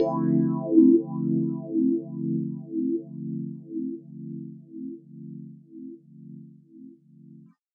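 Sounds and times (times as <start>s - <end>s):
wobbly swell chord in D on piano: 0.0s - 3.6s.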